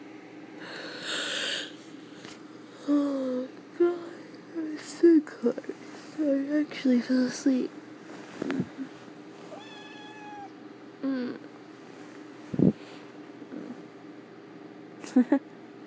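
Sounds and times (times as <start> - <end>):
low hum: 0.0 - 15.8
speech: 6.6 - 7.8
cat meowing: 9.5 - 10.5.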